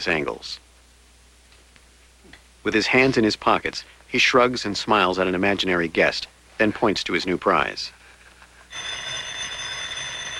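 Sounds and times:
speech: 0.0 - 0.6, 2.6 - 8.0
telephone ringing in a home: 8.7 - 10.3.

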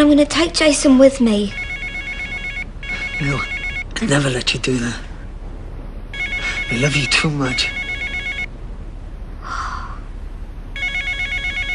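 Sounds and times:
speech: 0.0 - 1.6, 3.2 - 5.1, 6.7 - 7.8
mobile phone ringing with a bright electronic tone: 1.5 - 4.0, 6.2 - 8.5, 10.8 - 11.7.

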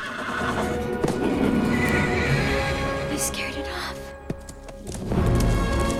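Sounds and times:
horse whinnying: 0.0 - 3.1
musical backdrop: 0.1 - 5.9.

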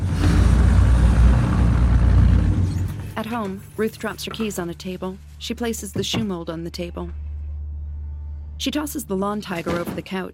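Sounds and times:
car engine rumbling as the car drives off: 0.0 - 3.0
speech: 3.2 - 7.2, 8.6 - 10.3.

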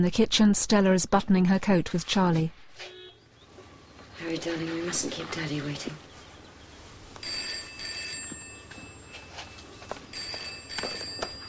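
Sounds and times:
speech: 0.0 - 3.0, 4.2 - 6.1
telephone ringing in a home kitchen: 7.2 - 11.4.

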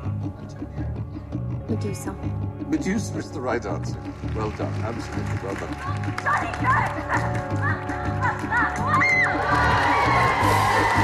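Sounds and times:
speech: 1.7 - 11.0
schoolgirls cheering and shrieking in a TV studio audience: 7.8 - 11.0.

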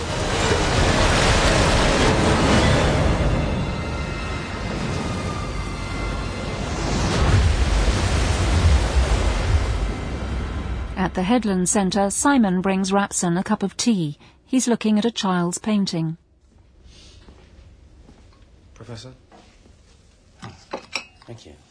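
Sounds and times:
floodwater crashing through library windows: 0.0 - 11.4
speech: 11.2 - 16.2, 18.8 - 19.2, 21.3 - 21.6.

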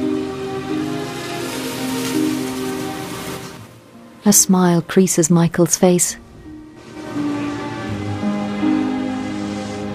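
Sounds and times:
steady rain falling on a bridge: 0.0 - 4.8, 6.6 - 9.6
speech: 4.2 - 6.2.

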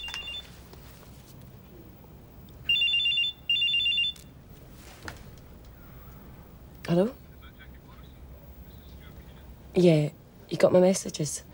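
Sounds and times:
mobile phone ringtone from inside a handbag: 0.0 - 0.5, 2.7 - 4.2
speech: 6.9 - 7.2, 9.8 - 11.5.

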